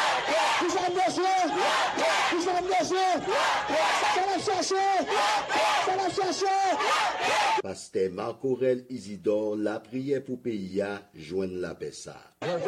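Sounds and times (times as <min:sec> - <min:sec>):
marching crowd chanting for peace in unison: 0:00.0 - 0:07.6
speech: 0:04.4 - 0:12.6.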